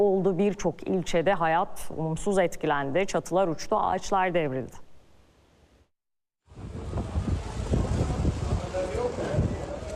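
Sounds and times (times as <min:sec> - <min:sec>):
speech: 0:00.0 - 0:04.8
strong storm wind in Istanbul roaring against the microphone: 0:06.5 - 0:09.9.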